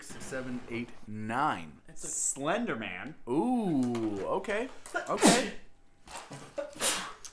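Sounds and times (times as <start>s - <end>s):
speech: 0.3s - 5.7s, 6.3s - 6.5s
sneeze: 5.1s - 5.6s, 6.6s - 7.3s.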